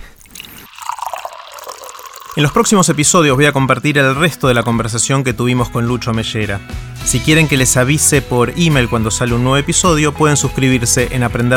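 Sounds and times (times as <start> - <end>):
water poured into a glass for drinking: 0.0 - 5.2
speech: 2.4 - 11.5.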